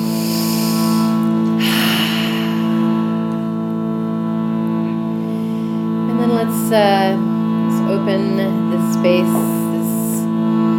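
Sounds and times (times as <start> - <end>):
group inhaling through the nose and exhaling through the mouth during mantra practice: 0.0 - 3.6, 5.1 - 6.0
steady sustained drone: 0.0 - 10.7
speech: 6.7 - 7.3, 9.0 - 9.6.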